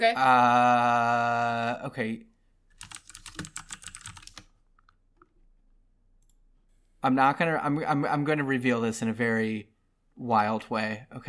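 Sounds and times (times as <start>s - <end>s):
speech: 0.0s - 2.9s, 7.0s - 11.2s
fingers typing on a computer keyboard: 2.8s - 5.0s.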